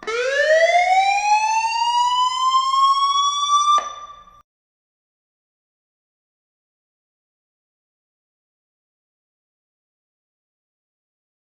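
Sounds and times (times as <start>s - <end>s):
shelter break-in alarm: 0.0s - 4.4s.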